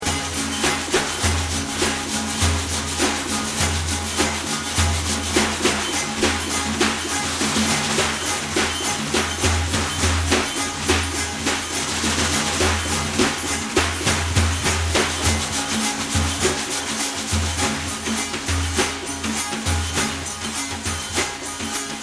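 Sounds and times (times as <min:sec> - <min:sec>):
daf frame drum: 0:00.0 - 0:22.0
tanbur lute: 0:00.0 - 0:22.0.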